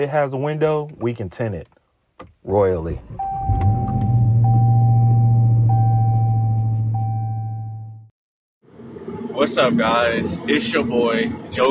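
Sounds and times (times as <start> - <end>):
speech: 0.0 - 1.8, 2.4 - 3.7, 9.4 - 11.6
car engine rumble inside a moving car: 2.4 - 8.0.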